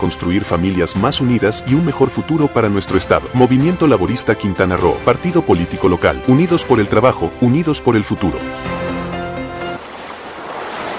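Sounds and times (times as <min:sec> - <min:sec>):
speech: 0:00.1 - 0:08.8
ocean waves breaking on the shore: 0:08.5 - 0:10.9.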